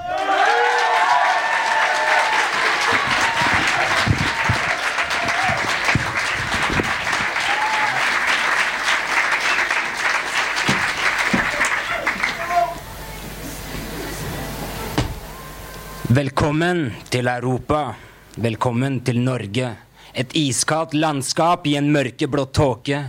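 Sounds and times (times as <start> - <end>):
warm applause from a sizable audience: 0.0 - 12.9
speech: 16.2 - 23.0.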